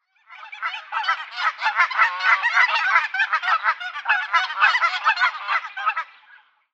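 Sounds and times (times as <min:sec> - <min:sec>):
several Canada geese Branta canadensis calling: 0:00.3 - 0:06.4.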